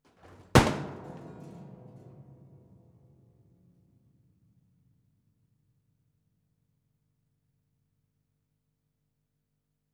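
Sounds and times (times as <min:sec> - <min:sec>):
piano being pushed over and destroyed: 0:00.3 - 0:02.7.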